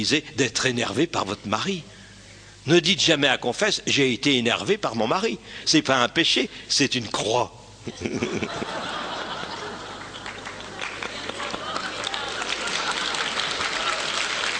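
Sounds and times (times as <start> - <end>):
speech: 0.0 - 2.0, 2.6 - 9.0
laughter: 7.8 - 14.2
crowd of men and women applauding: 9.2 - 14.5.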